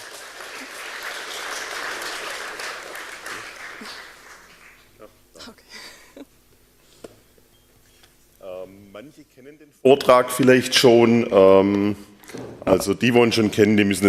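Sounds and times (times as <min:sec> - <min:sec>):
audience applause at a tech conference: 0:00.0 - 0:05.0
speech: 0:03.8 - 0:04.0, 0:09.0 - 0:14.0.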